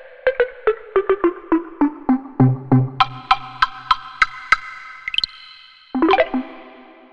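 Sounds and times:
Korg M1 synthesizer block sound: 0:00.3 - 0:04.0, 0:06.0 - 0:07.1.

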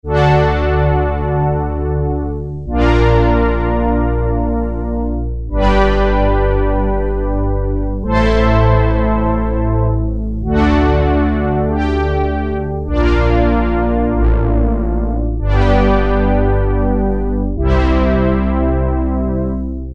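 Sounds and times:
Roland Juno-106 orchestral pad factory preset: 0:00.4 - 0:19.8.

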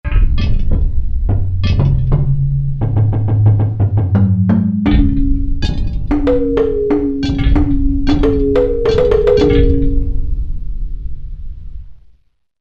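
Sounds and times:
ethnic percussion from a Korg MSC-1S: 0:00.3 - 0:10.4.

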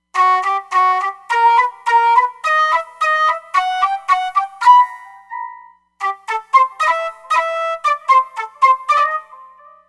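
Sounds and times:
Hop Flute patch on Roland Fantom XR synthesizer: 0:00.1 - 0:09.8.

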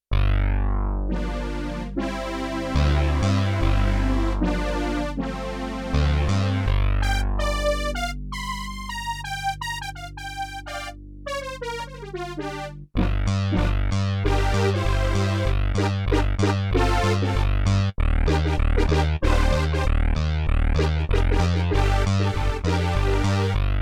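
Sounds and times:
bass and synth brass split on a sampler: 0:00.1 - 0:23.8.

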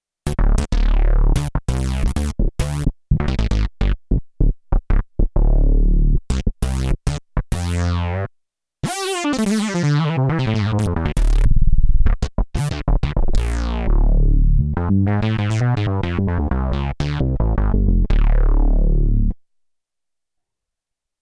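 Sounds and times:
wet bass patch on Roland JD-800 synthesizer: 0:00.3 - 0:08.3, 0:08.9 - 0:19.4.

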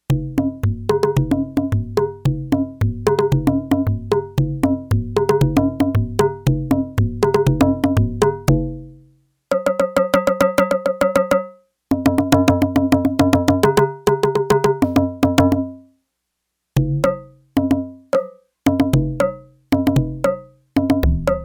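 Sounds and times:
Yamaha TX802 conga drum: 0:00.0 - 0:15.9, 0:16.8 - 0:21.4.

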